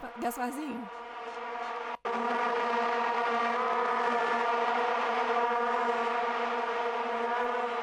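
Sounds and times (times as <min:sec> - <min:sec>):
many vuvuzela horns droning in a stadium: 0:00.0 - 0:07.8
speech: 0:00.2 - 0:01.6.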